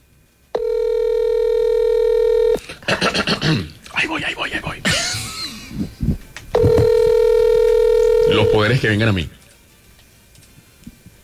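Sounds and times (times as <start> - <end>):
steady buzzy telephone tone while a number is dialed: 0.5 - 2.6, 6.6 - 8.8
speech: 2.9 - 4.8, 8.5 - 9.4.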